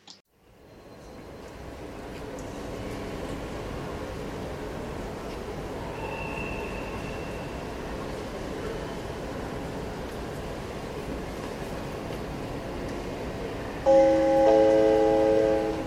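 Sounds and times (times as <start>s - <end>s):
train rumbling at a station: 0.5s - 15.8s
loud tonal train horn or whistle blaring: 13.8s - 15.8s.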